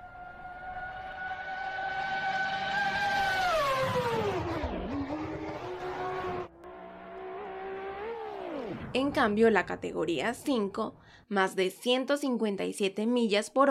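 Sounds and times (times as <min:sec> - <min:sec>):
fast car roaring past on a highway: 0:00.0 - 0:09.0
speech: 0:09.0 - 0:13.6.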